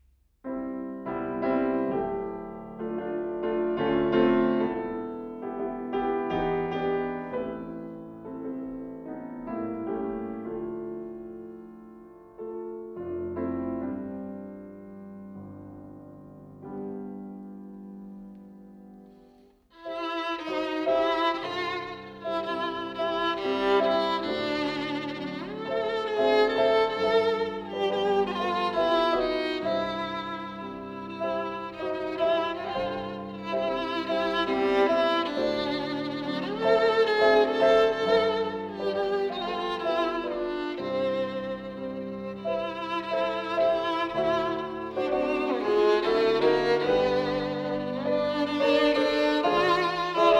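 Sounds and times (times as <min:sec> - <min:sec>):
piano: 0:00.0 - 0:50.3
violin: 0:00.5 - 0:18.5, 0:19.4 - 0:50.3.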